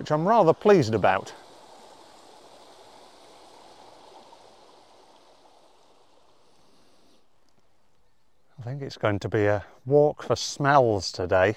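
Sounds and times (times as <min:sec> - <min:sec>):
speech: 0:00.0 - 0:01.4, 0:08.6 - 0:11.5
small beck flowing through a valley: 0:00.0 - 0:09.9.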